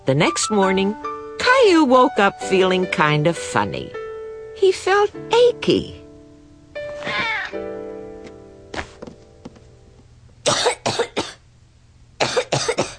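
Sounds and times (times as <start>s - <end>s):
speech: 0.1s - 4.0s, 4.6s - 6.0s
child coughing harsh raspy coughs: 7.0s - 7.5s, 10.5s - 11.4s, 12.2s - 12.9s
child short whiny vocal sound: 7.0s - 7.6s.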